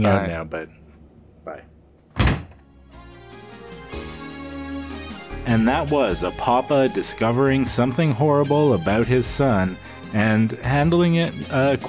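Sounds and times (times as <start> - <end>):
speech: 0.0 - 0.8, 5.5 - 11.8
heavy door closing with a thunk: 2.0 - 2.7.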